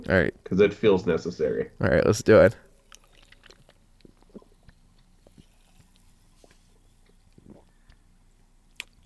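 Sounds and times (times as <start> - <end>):
speech: 0.0 - 2.6
person sipping and gulping a sour watermelon energy drink: 2.8 - 8.0
soft mouth clicks and smacks: 2.9 - 8.0, 8.7 - 9.0.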